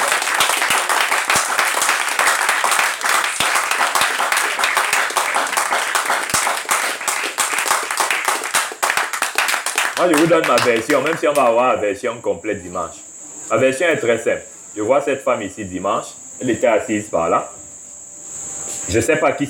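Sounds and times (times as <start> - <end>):
crowd applauding: 0.0 - 11.6
speech: 10.0 - 17.6, 18.9 - 19.4.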